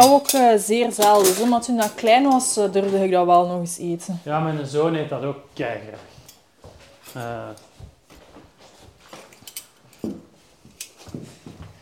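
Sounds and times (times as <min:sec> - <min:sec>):
metal cutlery and serving spoon clinking and scraping: 0:00.0 - 0:03.0, 0:06.2 - 0:07.4, 0:09.0 - 0:11.2
speech: 0:00.0 - 0:06.2, 0:07.1 - 0:07.7.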